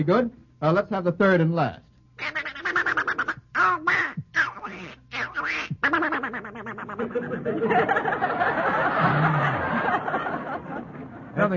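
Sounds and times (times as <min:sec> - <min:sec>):
speech: 0:00.0 - 0:02.4, 0:06.8 - 0:09.7, 0:11.4 - 0:11.5
voice imitating a cartoon duck quacking: 0:02.2 - 0:07.3
laughter: 0:06.1 - 0:11.5.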